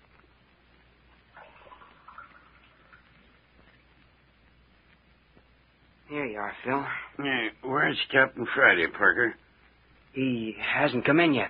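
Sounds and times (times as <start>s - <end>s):
steady hiss: 0.0s - 11.4s
water poured into a glass as a drink: 1.3s - 3.6s
speech: 6.1s - 9.4s, 10.1s - 11.4s.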